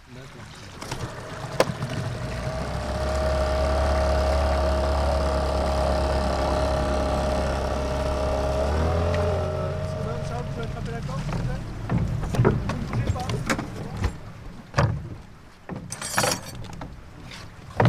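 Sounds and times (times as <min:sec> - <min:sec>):
faint wind: 0:00.0 - 0:17.8
water sloshing against a flat-bottomed Loire river boat: 0:00.0 - 0:17.8
hollow knocks and splashes against the hull of a Loire river boat: 0:00.2 - 0:17.8
low droning hum aboard a flat-bottomed Loire river boat: 0:00.8 - 0:13.2.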